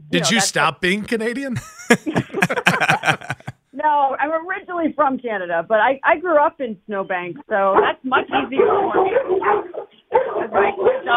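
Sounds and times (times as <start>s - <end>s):
speech: 0.1s - 11.1s
laughter: 0.2s - 3.5s
several dogs barking: 7.8s - 11.1s.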